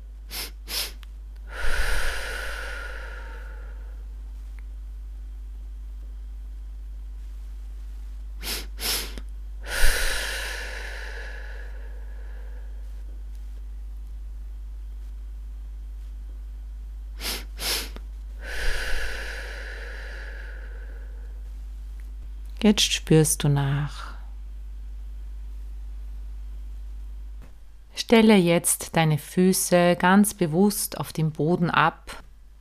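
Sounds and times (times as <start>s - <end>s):
short sniffing inhales through the nose in a breathing exercise: 0.3s - 3.9s, 8.4s - 12.8s, 17.2s - 21.2s
long airy exhale through the mouth in a breathing exercise: 0.3s - 4.0s, 8.4s - 13.0s, 17.2s - 21.4s
speech: 22.6s - 24.1s, 28.1s - 32.2s.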